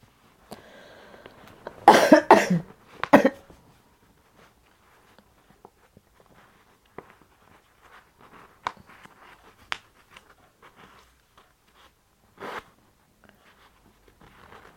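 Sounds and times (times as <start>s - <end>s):
person coughing harshly: 1.8s - 3.5s.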